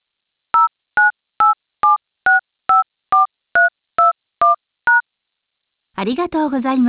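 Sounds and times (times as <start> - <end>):
touch-tone beeps from a telephone keypad entering a number: 0.6 - 5.0
speech: 6.0 - 6.8.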